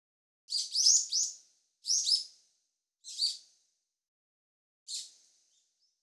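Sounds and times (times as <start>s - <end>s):
bird chirping: 0.5s - 2.3s, 3.0s - 3.4s, 4.9s - 5.9s.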